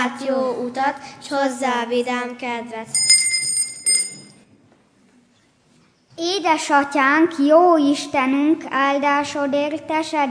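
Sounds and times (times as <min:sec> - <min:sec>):
speech: 0:00.1 - 0:03.2, 0:06.2 - 0:10.2
bright high-pitched metallic bell ringing: 0:02.9 - 0:04.4.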